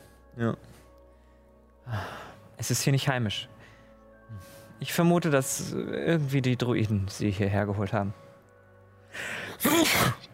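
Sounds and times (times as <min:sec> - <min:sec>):
speech: 0:00.4 - 0:00.8, 0:01.9 - 0:03.5, 0:04.3 - 0:08.2, 0:09.2 - 0:10.2
person sneezing: 0:09.6 - 0:10.3.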